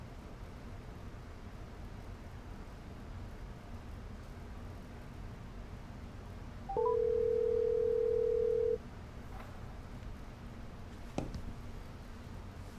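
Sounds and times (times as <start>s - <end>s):
electronic telephone dialing beeps: 6.7s - 8.8s
telephone ring tone: 6.7s - 8.8s.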